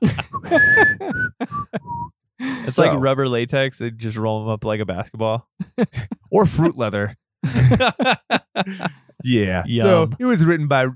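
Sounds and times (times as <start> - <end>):
speech: 0.0 - 1.6, 2.6 - 10.9
laughter: 0.0 - 2.0, 5.6 - 10.3
person whistling clear notes: 0.1 - 2.2.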